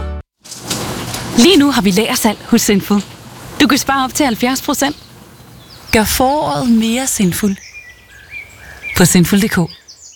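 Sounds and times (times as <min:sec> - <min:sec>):
person's voice: 0:01.4 - 0:05.0, 0:05.9 - 0:07.6, 0:09.0 - 0:09.8
speech: 0:01.4 - 0:05.1, 0:06.0 - 0:07.7, 0:09.0 - 0:09.8
faint birds chirping: 0:01.9 - 0:10.1.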